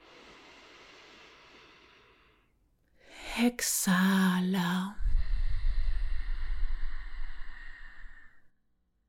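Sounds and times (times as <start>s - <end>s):
slow deep inhale: 0.0s - 3.2s, 5.0s - 8.5s
speech: 3.4s - 5.0s.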